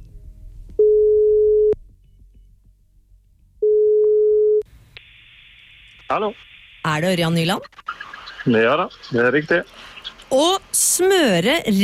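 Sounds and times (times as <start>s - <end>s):
long low telephone call tones on a line: 0.8s - 1.8s, 3.6s - 6.4s
speech: 6.1s - 11.8s.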